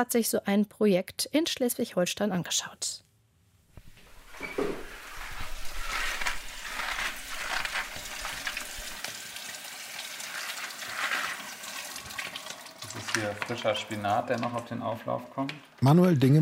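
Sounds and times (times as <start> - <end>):
speech: 0.0 - 3.1, 13.2 - 16.4
kitchen tap running while vegetables are washed: 3.8 - 14.9.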